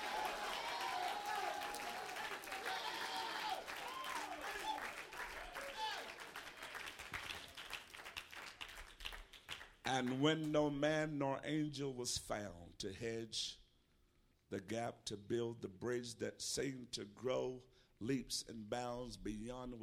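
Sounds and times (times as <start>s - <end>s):
church audience clapping hands in praise: 0.0s - 10.5s
speech: 9.9s - 13.6s, 14.5s - 19.8s.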